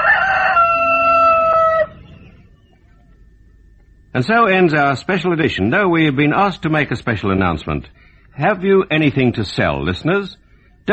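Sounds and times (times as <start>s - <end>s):
rooster crowing: 0.0s - 2.4s
speech: 4.2s - 10.9s.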